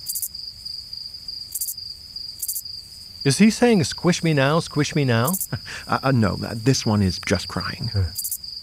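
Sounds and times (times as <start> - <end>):
Texas field cricket chirping: 0.0 - 8.6
steady high insect drone: 0.0 - 8.6
speech: 3.2 - 8.2
laughter: 3.3 - 8.2.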